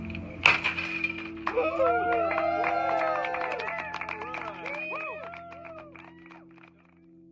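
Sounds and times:
champagne bottle smashed against the hull of a submersible: 0:00.4 - 0:01.5
crowd cheering and whooping: 0:01.4 - 0:06.8.

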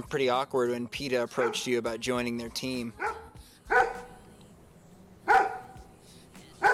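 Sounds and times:
speech: 0:00.0 - 0:03.2
dog barking in sharp woofs: 0:01.4 - 0:01.7, 0:03.0 - 0:04.1, 0:05.2 - 0:05.8.

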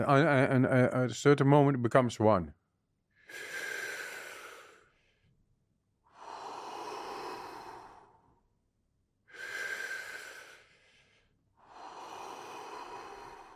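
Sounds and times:
speech: 0:00.0 - 0:02.6
deep breathing in a guided breathing exercise: 0:03.1 - 0:13.5.

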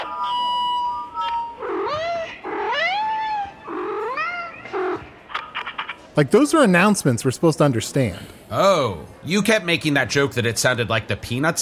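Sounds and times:
cat meowing through a speaker: 0:01.2 - 0:05.0
speech: 0:06.2 - 0:11.6.

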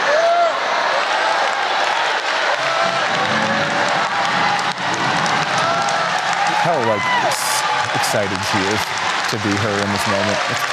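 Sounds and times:
scattered shouts from the audience: 0:00.0 - 0:08.8
large audience clapping: 0:00.0 - 0:10.7
speech: 0:06.9 - 0:07.4, 0:08.1 - 0:10.7.

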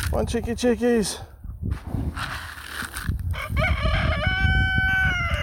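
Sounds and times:
speech: 0:00.1 - 0:02.4
rooster crowing: 0:03.3 - 0:05.4.

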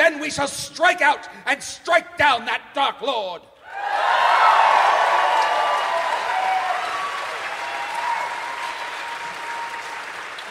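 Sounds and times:
speech: 0:00.3 - 0:04.2
faint cheers: 0:03.6 - 0:10.4
audience applause: 0:03.9 - 0:10.4.

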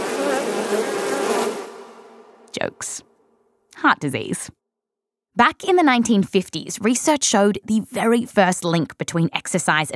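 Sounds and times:
killer bees buzzing: 0:00.0 - 0:02.5
speech: 0:03.8 - 0:04.6, 0:05.4 - 0:09.9.

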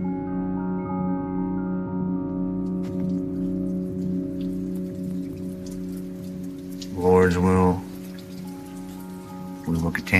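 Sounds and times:
low droning hum: 0:00.0 - 0:10.0
heavy rain pouring during a hurricane: 0:02.7 - 0:10.1
speech: 0:07.3 - 0:07.8, 0:09.8 - 0:10.1.

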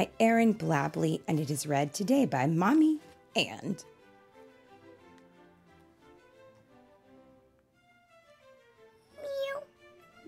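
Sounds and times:
speech: 0:00.0 - 0:03.9
child imitating a kitten meowing: 0:09.1 - 0:09.7.

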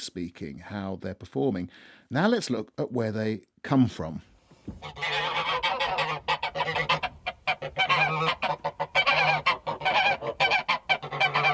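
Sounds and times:
speech: 0:00.0 - 0:05.7
flock of geese honking: 0:04.8 - 0:11.5.

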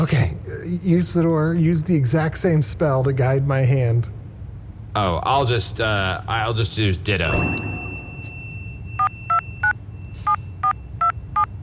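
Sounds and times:
speech: 0:00.0 - 0:04.2, 0:05.0 - 0:07.6
low hum: 0:00.0 - 0:11.6
phone call ringing: 0:07.2 - 0:11.5
phone keypad touch-tone beeps dialing a number: 0:07.3 - 0:11.5.

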